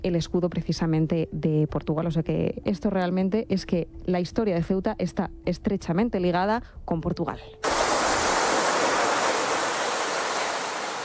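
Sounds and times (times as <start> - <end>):
speech: 0.0 - 7.7
sea waves rushing with a broad hiss of surf: 7.6 - 11.0.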